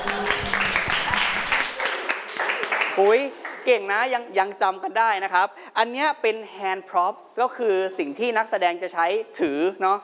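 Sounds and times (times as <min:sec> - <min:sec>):
classmates clapping for a student who answered correctly: 0:00.0 - 0:03.9
speech: 0:03.0 - 0:10.0.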